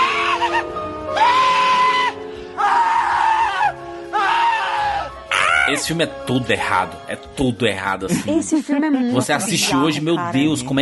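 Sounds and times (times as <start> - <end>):
man screaming: 0.0 - 5.9
speech: 5.7 - 10.8.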